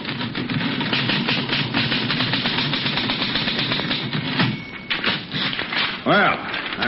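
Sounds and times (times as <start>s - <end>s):
typewriter typing in a living room: 0.0s - 6.8s
speech: 6.1s - 6.8s.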